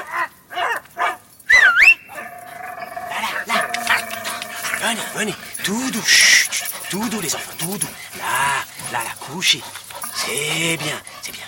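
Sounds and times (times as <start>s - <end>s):
dogs barking near a château: 0.0s - 11.4s
dog whining yelp: 1.5s - 5.2s
speech: 4.9s - 11.4s.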